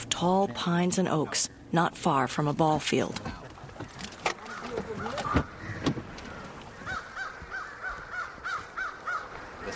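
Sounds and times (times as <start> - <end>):
speech: 0.2 - 3.4
flock of crows cawing at evening roost among tall pines and oaks: 4.4 - 9.7.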